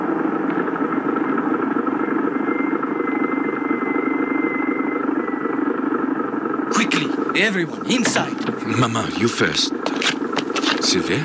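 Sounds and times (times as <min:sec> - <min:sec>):
car engine droning with a faint whine: 0:00.0 - 0:11.2
speech: 0:07.4 - 0:10.2, 0:10.8 - 0:11.2.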